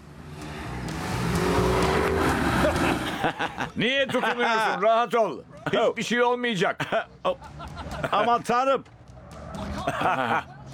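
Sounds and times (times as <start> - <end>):
V6 car engine accelerating hard on an empty street: 0.0 - 3.8
laughter: 2.5 - 5.8, 6.8 - 8.5, 9.4 - 10.7
speech: 3.4 - 9.0, 9.8 - 10.5.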